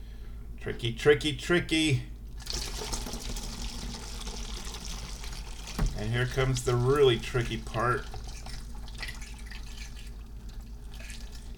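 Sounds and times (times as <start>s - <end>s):
speech: 0.6s - 2.5s, 6.0s - 8.2s
hot tea pouring into a teacup: 2.3s - 11.5s.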